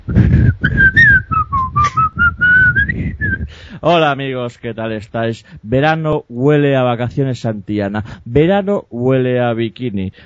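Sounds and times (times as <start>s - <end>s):
low busy rumble: 0.0s - 3.8s
person whistling a TV series theme tune while pedalling a bicycle: 0.1s - 3.6s
speech: 3.8s - 10.2s.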